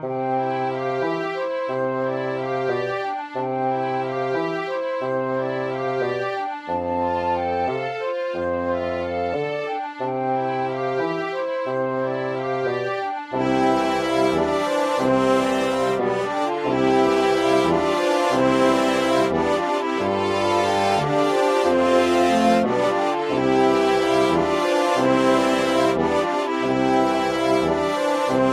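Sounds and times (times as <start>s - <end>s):
static bright bassoon: 0.0s - 28.5s.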